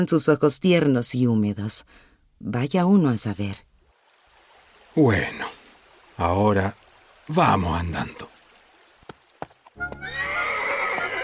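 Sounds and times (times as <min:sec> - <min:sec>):
speech: 0:00.0 - 0:03.7, 0:05.0 - 0:05.6, 0:06.2 - 0:08.3
ridden horse hooves climbing on hard rocky ground: 0:08.7 - 0:11.2
horse whinnying: 0:09.8 - 0:11.2.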